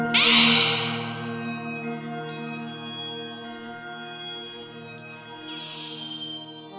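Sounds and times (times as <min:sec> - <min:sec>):
zinging up and down abstract electronic synth loop: 0:00.1 - 0:02.8.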